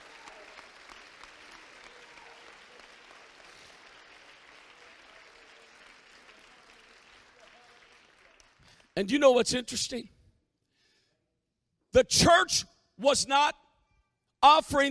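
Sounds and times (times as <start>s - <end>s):
audience clapping hands at a church gathering: 0.0s - 9.2s
speech: 9.0s - 10.2s, 11.9s - 13.6s, 14.4s - 14.9s.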